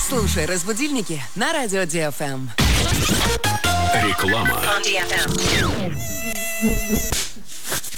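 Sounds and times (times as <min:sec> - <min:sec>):
speech: 0:00.1 - 0:07.9
mosquito buzzing: 0:04.9 - 0:07.2.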